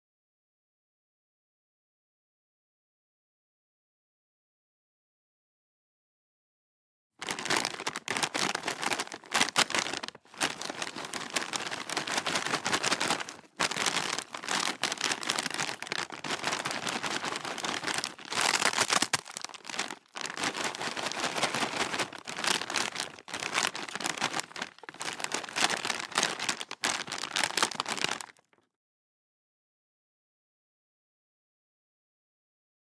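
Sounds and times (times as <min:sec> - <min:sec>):
chip packet rustling: 0:07.2 - 0:28.5.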